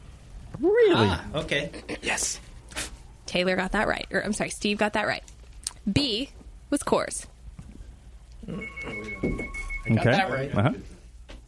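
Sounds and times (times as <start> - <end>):
speech: 0.6 - 2.5, 3.3 - 7.3, 8.5 - 10.9
phone ringing with electronic warble: 8.5 - 10.8.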